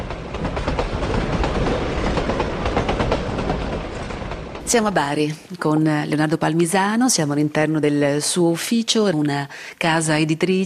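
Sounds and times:
train rolling along the rails from San Severo to Bari: 0.0s - 5.9s
speech: 4.7s - 10.6s.

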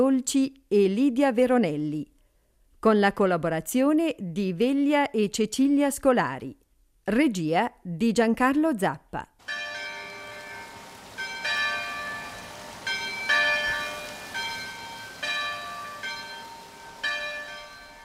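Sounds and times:
speech: 0.0s - 2.2s, 2.8s - 9.6s
bells of the old chapel of the Madonna di Bertè above Lumino ringing: 9.4s - 18.0s
stream flowing: 9.4s - 18.0s.

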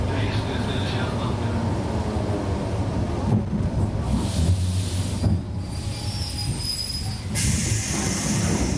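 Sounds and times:
regional train rumbling and rattling on rails: 0.0s - 8.7s
high train wheel squeals: 5.5s - 8.7s.

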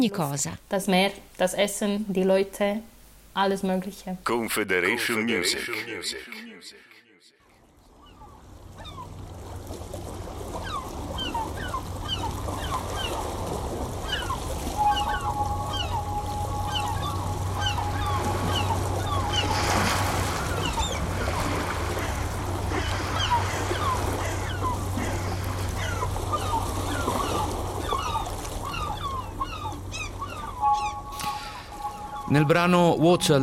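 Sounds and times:
speech: 0.0s - 7.0s, 32.3s - 33.4s
gentle waves lapping: 4.5s - 6.6s, 7.9s - 33.4s
seagulls calling overhead: 7.9s - 33.4s.

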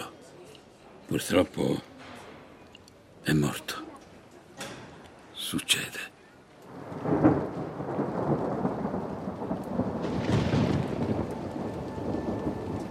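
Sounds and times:
speech: 1.1s - 1.9s, 3.2s - 3.8s, 5.5s - 6.1s
steady rain pouring beside a lake: 5.4s - 12.9s
low rumble of thunder: 6.7s - 12.9s.

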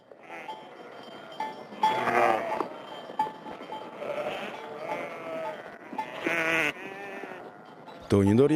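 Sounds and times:
flock of sheep bleating at a sheep farm in Semione: 0.2s - 0.9s, 1.8s - 2.7s, 3.6s - 7.8s
murmur of other animals: 0.2s - 8.2s
speech: 8.1s - 8.5s.

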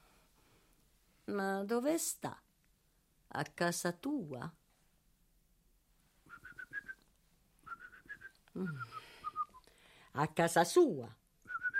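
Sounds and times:
speech: 1.3s - 2.4s, 3.3s - 4.6s, 8.6s - 9.0s, 10.1s - 11.2s
person whistling at the dinner table: 6.3s - 7.0s, 7.6s - 9.7s, 11.5s - 11.7s
loud breathy vocal sound: 8.6s - 10.1s.

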